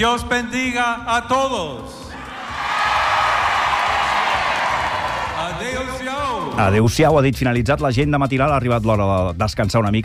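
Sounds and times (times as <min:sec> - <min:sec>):
speech: 0:00.0 - 0:02.1, 0:05.4 - 0:10.0
large crowd of faithful shouting and cheering in the Plaça Nova by the cathedral: 0:02.0 - 0:06.9.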